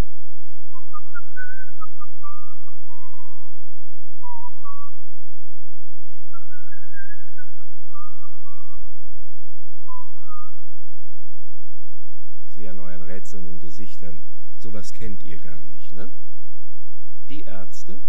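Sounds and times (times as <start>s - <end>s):
low steady hum: 0.0s - 18.0s
man whistling a tuneful song melody: 0.4s - 5.2s, 6.1s - 9.1s, 9.8s - 10.8s
speech: 13.8s - 16.3s, 17.3s - 18.0s.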